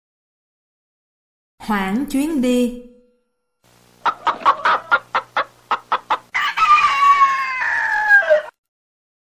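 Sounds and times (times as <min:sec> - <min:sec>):
speech: 0:01.6 - 0:02.9
chickens clucking in a backyard: 0:04.0 - 0:08.6.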